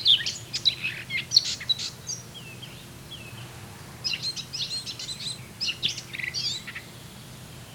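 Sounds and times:
Eurasian blackcap song: 0.0 - 7.7.

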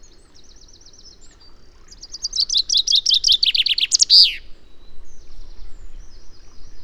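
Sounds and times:
common chaffinch Fringilla coelebs singing: 0.6 - 4.7.

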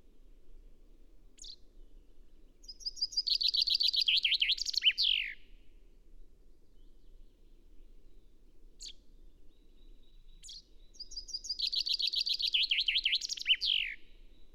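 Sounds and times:
Common chaffinch singing a bright descending trill, Fringilla coelebs: 1.4 - 1.6, 2.6 - 5.4, 8.8 - 14.5.

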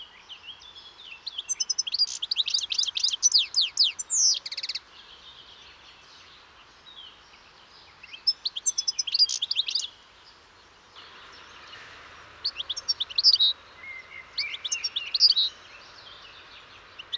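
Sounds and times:
European goldfinch Carduelis carduelis twittering calls: 1.3 - 4.8, 8.2 - 9.9, 12.4 - 17.1.

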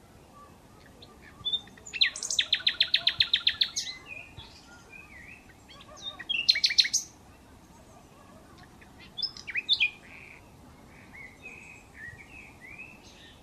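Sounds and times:
Common nightingale song: 0.0 - 13.4.

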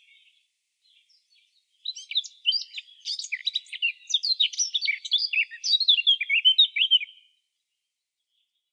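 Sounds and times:
Eurasian blackcap Sylvia atricapilla chattering and twittering: 1.8 - 7.1.

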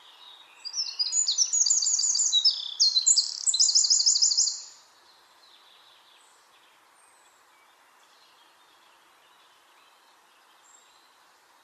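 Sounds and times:
Eurasian wren singing: 0.1 - 4.8.

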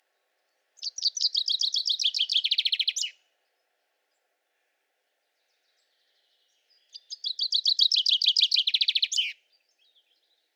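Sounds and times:
common chaffinch Fringilla coelebs singing: 0.8 - 3.2, 6.9 - 9.4.

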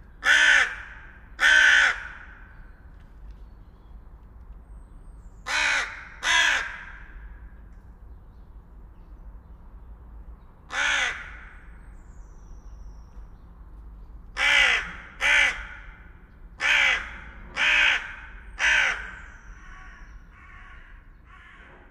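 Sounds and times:
carrion crow Corvus corone calling with rough grating caws: 0.2 - 2.4, 5.5 - 7.3, 10.7 - 11.6, 14.4 - 16.0, 16.6 - 21.8.

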